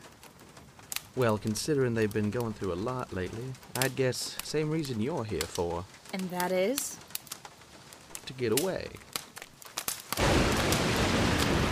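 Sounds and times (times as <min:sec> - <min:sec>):
heavy rain: 0:00.0 - 0:11.6
speech: 0:01.2 - 0:07.1, 0:08.4 - 0:09.1.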